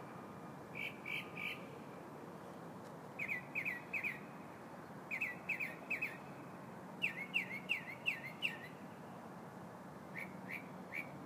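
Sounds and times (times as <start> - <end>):
steady low hiss: 0.0 - 11.2
bird song of short chirped notes: 0.8 - 1.7, 3.2 - 4.3, 5.1 - 6.2, 7.0 - 8.8.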